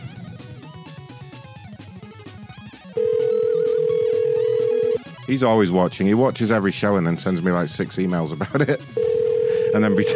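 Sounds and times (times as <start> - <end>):
cell phone ringing with a busy melodic ringtone on a call: 3.0 - 5.0, 8.9 - 10.1
speech: 5.3 - 9.1, 9.7 - 10.1.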